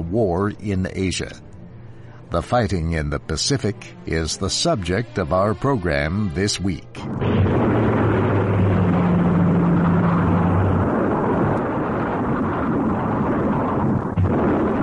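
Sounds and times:
speech: 0.1s - 1.5s, 2.3s - 7.4s
Japanese warplanes droning over Pearl Harbor Hawaii: 7.0s - 14.1s
bomb blasts at the naval base at Pearl Harbor Hawaii: 7.0s - 14.8s.

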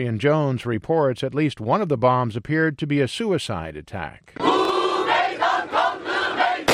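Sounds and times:
speech: 0.0s - 4.5s
crowd at a peace rally chanting and cheering: 4.4s - 6.7s.

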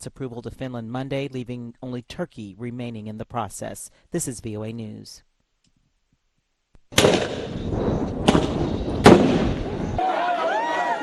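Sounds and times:
speech: 0.0s - 5.3s
police firing tear gas at anti-government protesters in Nairobi Kenya: 6.9s - 10.0s
rough noisy rumble: 6.9s - 10.0s.

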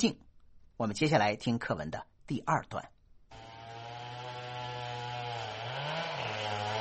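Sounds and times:
speech: 0.0s - 0.2s, 0.8s - 3.0s
chainsaw cutting trees in a forest: 3.3s - 6.7s.

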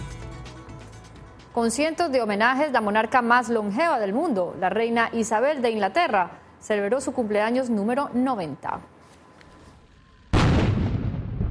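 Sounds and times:
speech: 1.6s - 8.9s
cannon blast from a salute in London for a royal birthday: 10.3s - 11.4s.

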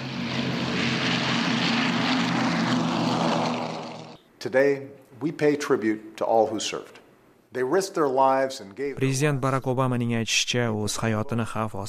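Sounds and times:
1940s propeller aircraft flying overhead in Washington: 0.0s - 4.2s
speech: 4.4s - 11.8s.

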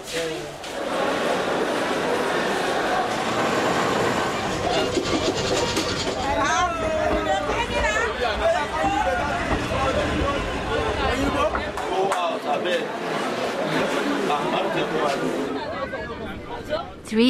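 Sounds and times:
crowd murmuring in a long train ticket line in Lagos, Nigeria: 0.0s - 17.2s
speech: 0.1s - 0.6s
sharp knocks and clatters: 4.5s - 11.9s.

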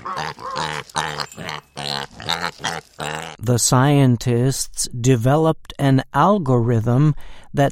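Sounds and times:
pig grunting and oinking: 0.0s - 3.4s
speech: 0.1s - 7.6s.

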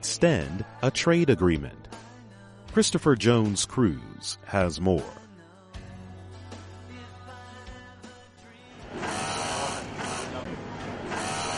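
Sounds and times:
speech: 0.0s - 2.0s, 2.8s - 5.2s
industrial sewing machine at a textile factory near Nairobi, Kenya: 8.8s - 11.5s.

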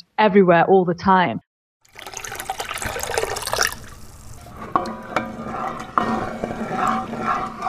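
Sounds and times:
speech: 0.2s - 1.5s
water dripping: 1.8s - 4.4s
water pouring into a large copper brewing vat at a Magaliesberg brewery: 1.8s - 5.9s.

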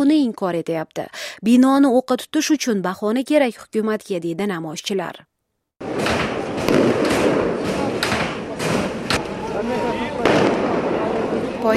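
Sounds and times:
speech: 0.0s - 5.3s
explosions in a capital city during violent clashes between protesters and security forces: 5.8s - 9.4s, 10.2s - 11.4s.

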